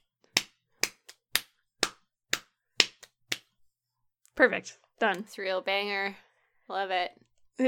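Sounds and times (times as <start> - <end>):
hand slapping leg to keep a beat: 0.2 - 3.6
speech: 4.4 - 7.6.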